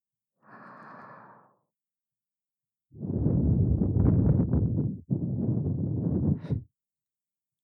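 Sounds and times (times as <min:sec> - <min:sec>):
warm breath blown close to ear: 0:03.0 - 0:06.6.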